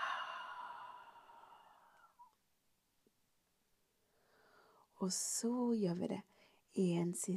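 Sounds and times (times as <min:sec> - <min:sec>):
exhaling through the mouth in a guided breathing exercise: 0:00.0 - 0:02.1
speech: 0:05.0 - 0:07.3.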